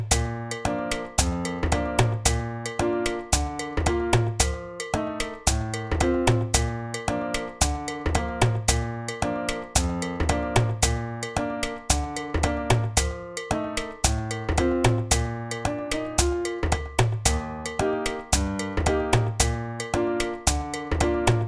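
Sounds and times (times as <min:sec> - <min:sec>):
backing track music: 0:00.1 - 0:21.4.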